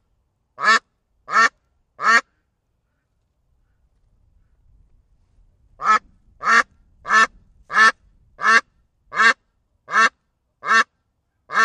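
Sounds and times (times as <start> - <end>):
duck quacking: 0.6 - 2.4, 5.8 - 10.9.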